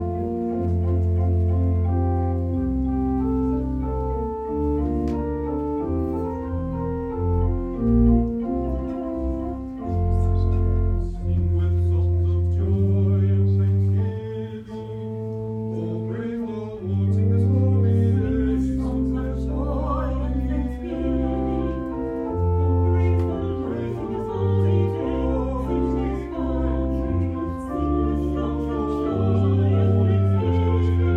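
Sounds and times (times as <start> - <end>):
organ playing a prelude: 0.0 - 31.1
soloists singing a prelude: 11.2 - 31.1.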